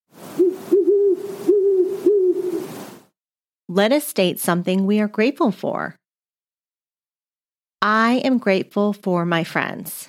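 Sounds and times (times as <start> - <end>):
owl hooting: 0.3 - 2.8
speech: 3.7 - 6.0, 7.8 - 10.0.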